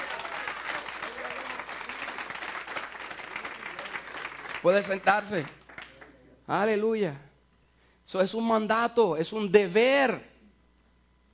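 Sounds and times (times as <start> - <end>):
audience applauding: 0.0 - 6.2
speech: 4.6 - 5.6, 6.5 - 7.3, 8.1 - 10.3.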